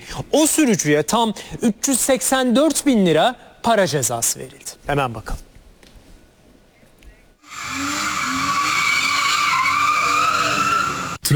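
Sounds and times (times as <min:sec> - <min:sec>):
speech: 0:00.2 - 0:05.5
tires squealing as a car drifts on a street: 0:07.4 - 0:11.2.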